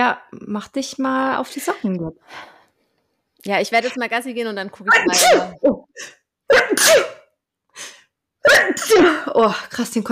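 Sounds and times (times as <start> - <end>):
speech: 0.1 - 2.6, 3.4 - 7.2, 7.8 - 10.1
person sneezing loudly: 4.9 - 9.2.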